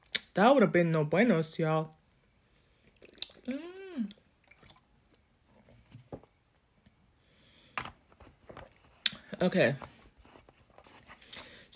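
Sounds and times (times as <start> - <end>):
speech: 0.4 - 2.0, 3.5 - 4.2, 9.4 - 9.9
person sipping and swallowing water: 2.7 - 5.8.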